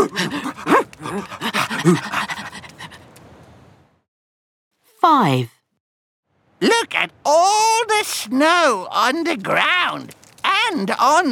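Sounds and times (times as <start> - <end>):
sled dogs panting: 0.0 - 3.2
speech: 1.1 - 2.3, 5.0 - 5.6, 6.6 - 11.3.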